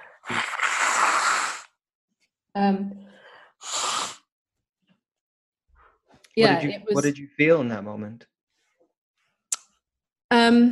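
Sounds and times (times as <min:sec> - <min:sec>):
person blowing nose: 0:00.2 - 0:01.8, 0:03.6 - 0:04.3
speech: 0:02.6 - 0:03.0, 0:06.4 - 0:08.3, 0:10.5 - 0:10.7.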